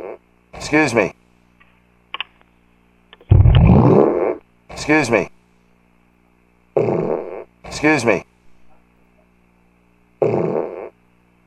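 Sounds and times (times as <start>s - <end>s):
fart: 0.0s - 0.2s, 3.3s - 4.4s, 6.8s - 7.5s, 10.2s - 11.0s
speech: 0.6s - 1.2s, 4.9s - 5.4s, 7.8s - 8.3s.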